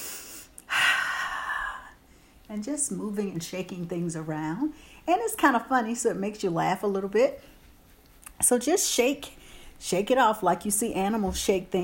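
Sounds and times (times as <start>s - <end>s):
breathing in through nose and out through mouth: 0.0s - 2.4s, 4.7s - 5.1s, 9.4s - 9.8s
speech: 2.5s - 7.5s, 8.4s - 11.8s.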